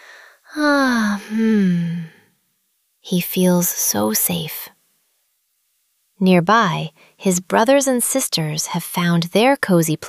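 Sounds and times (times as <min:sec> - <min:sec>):
speech: 0:00.5 - 0:01.7, 0:03.1 - 0:04.7, 0:06.2 - 0:10.0
person imitating a puppy's sleepy yawn: 0:00.5 - 0:02.2.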